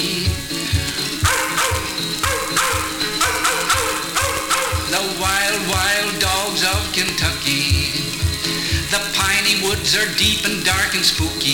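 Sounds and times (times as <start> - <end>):
backing music with loud steady rhythmic beat: 0.0 - 11.5
pack of hunting dogs barking and yelping: 1.1 - 5.0
hunting dogs howling: 1.2 - 5.9
speech: 8.9 - 11.5.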